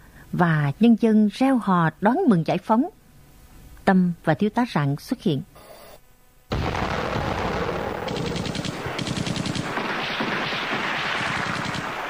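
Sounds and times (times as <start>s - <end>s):
speech: 0.3s - 3.0s, 3.9s - 5.5s
dense artillery gunfire and heavy booms in a battle scene: 6.5s - 12.0s.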